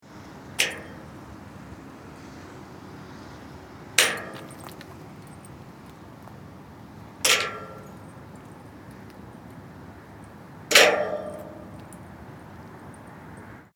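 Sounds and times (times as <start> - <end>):
chain striking outdoors in a landscape: 4.0 - 5.6, 7.2 - 8.6, 10.7 - 12.1.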